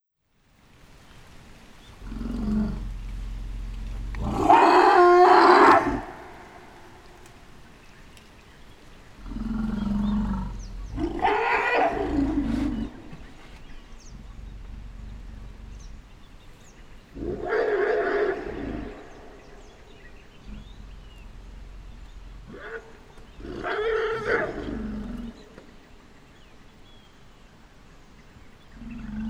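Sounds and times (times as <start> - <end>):
elephants confronting: 1.9 - 7.0, 9.2 - 25.4.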